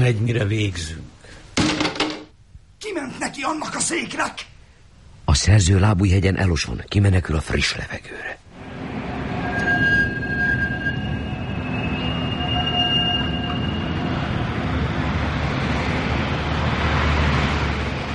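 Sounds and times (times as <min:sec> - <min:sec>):
speech: 0:00.0 - 0:01.0, 0:03.0 - 0:04.5, 0:05.3 - 0:08.4
low hum of city life at night: 0:08.4 - 0:18.1
tram bells ringing with high squealing tones: 0:08.6 - 0:15.2
trams rumbling along the rails at night: 0:08.6 - 0:18.1.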